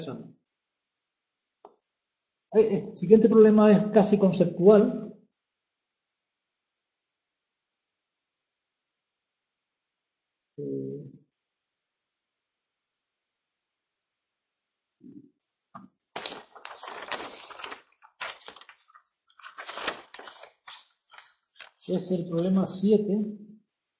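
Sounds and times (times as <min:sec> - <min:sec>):
speech: 0:00.0 - 0:00.4, 0:02.5 - 0:05.0, 0:22.0 - 0:23.5
papers shuffled and rustled: 0:16.2 - 0:22.6.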